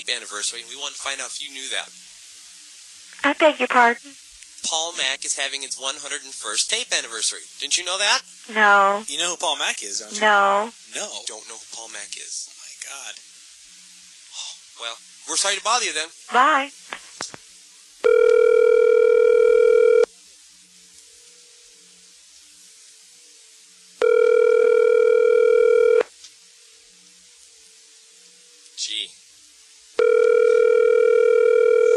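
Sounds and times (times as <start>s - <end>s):
speech: 0.0s - 2.2s, 3.2s - 13.3s, 14.8s - 16.9s
telephone ringing electronically over the line: 18.0s - 20.1s, 24.0s - 26.0s, 30.0s - 31.9s.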